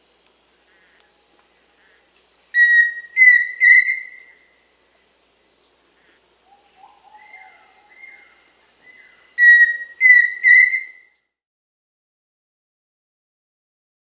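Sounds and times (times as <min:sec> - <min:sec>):
shrill insect drone in the Amazon region of Peru: 0:00.0 - 0:11.4
pheasant cuckoo whistling in the Amazon region of Peru: 0:02.6 - 0:04.2, 0:09.4 - 0:11.1.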